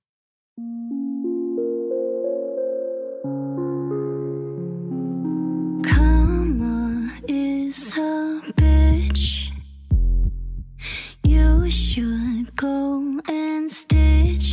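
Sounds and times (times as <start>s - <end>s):
speech: 0.6s - 1.0s
sustained stacked synth chords: 0.6s - 8.0s
deep bass: 5.9s - 7.6s, 8.6s - 12.7s, 13.9s - 14.5s.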